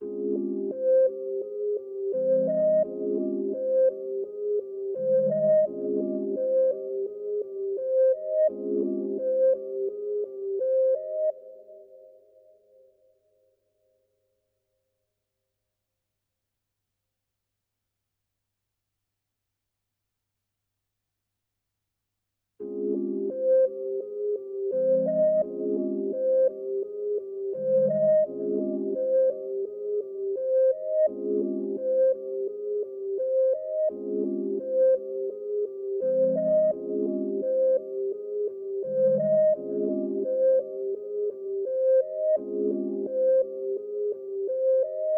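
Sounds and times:
reversed sine synth pad melody: 0:00.0 - 0:12.8, 0:22.7 - 0:45.1.

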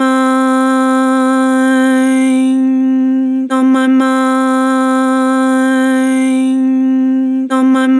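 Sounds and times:
vocals with vibrato: 0:00.0 - 0:07.9.

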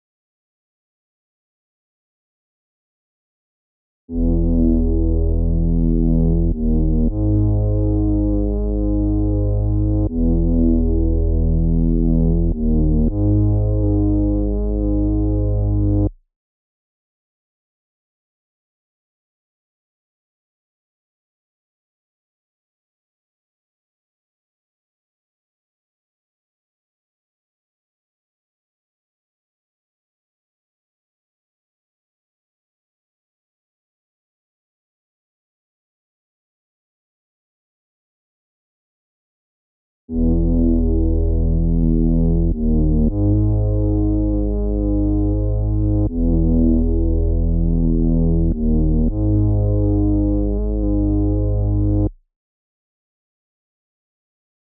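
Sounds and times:
bass melody loop in G# minor: 0:04.1 - 0:16.2, 0:40.1 - 0:52.1.

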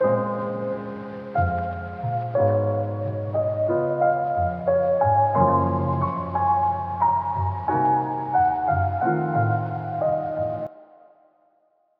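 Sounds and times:
wet piano loop in A sharp minor at 90 BPM: 0:00.0 - 0:10.7.

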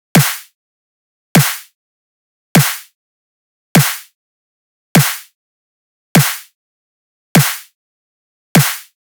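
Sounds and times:
midtempo drum loop with snare at 100 BPM: 0:00.2 - 0:00.5, 0:01.4 - 0:01.7, 0:02.6 - 0:02.9, 0:03.8 - 0:04.1, 0:05.0 - 0:05.3, 0:06.2 - 0:06.5, 0:07.4 - 0:07.7, 0:08.6 - 0:08.9.

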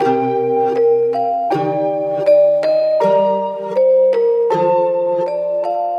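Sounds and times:
nostalgic melody loop in A sharp major at 160 BPM: 0:00.0 - 0:05.9.

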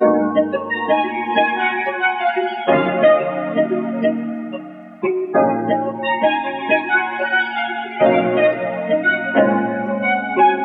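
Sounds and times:
R&B melody loop in D sharp minor: 0:00.0 - 0:10.6.

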